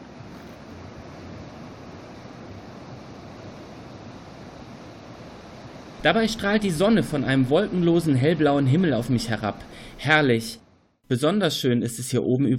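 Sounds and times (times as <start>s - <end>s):
wind noise: 0.0s - 9.9s
ocean waves washing onto a beach: 0.0s - 10.6s
speech: 6.0s - 12.5s.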